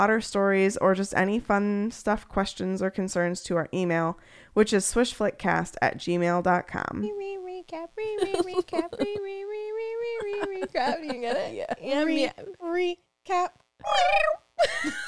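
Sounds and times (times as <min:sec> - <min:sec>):
speech: 0:00.0 - 0:09.4, 0:10.4 - 0:15.0
two people imitating cat meows, one trilled: 0:08.1 - 0:11.2, 0:13.8 - 0:14.5
laughter: 0:08.2 - 0:12.2, 0:14.6 - 0:15.0.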